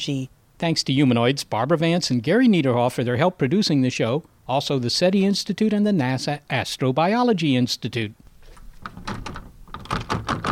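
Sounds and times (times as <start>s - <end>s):
speech: 0.0s - 8.2s
locked door being tried and rattled: 8.8s - 10.5s.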